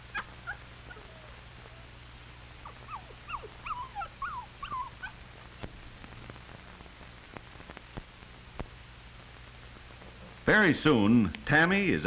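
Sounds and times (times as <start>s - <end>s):
steady low hum: 0.0s - 11.0s
faint hiss: 0.0s - 12.0s
puppy whimpering: 0.1s - 2.0s, 2.6s - 5.2s
speech: 10.5s - 12.0s.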